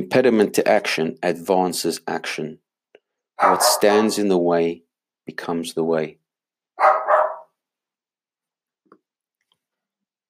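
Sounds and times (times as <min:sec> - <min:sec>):
speech: 0:00.0 - 0:02.6, 0:03.4 - 0:06.2, 0:06.8 - 0:07.0
pet dog barking: 0:03.4 - 0:04.2, 0:06.8 - 0:07.6.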